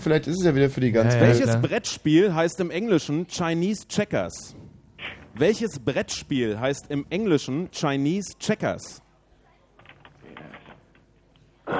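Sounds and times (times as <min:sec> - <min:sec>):
speech: 0:00.0 - 0:09.0
fingers typing on a keyboard: 0:09.8 - 0:11.0.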